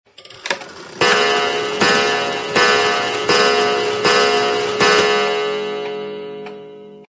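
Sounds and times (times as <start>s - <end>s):
eight day clock chiming slowly: 0.2s - 7.1s.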